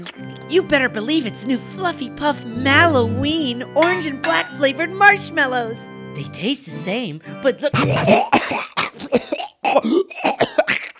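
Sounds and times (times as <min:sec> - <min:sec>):
speech: 0:00.0 - 0:10.3
harsh raspy dry coughs: 0:07.8 - 0:10.9
throat clearing: 0:07.8 - 0:10.9.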